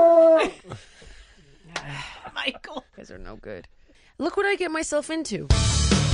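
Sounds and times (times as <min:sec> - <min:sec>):
small dog howling: 0:00.0 - 0:00.5
speech: 0:03.1 - 0:06.0.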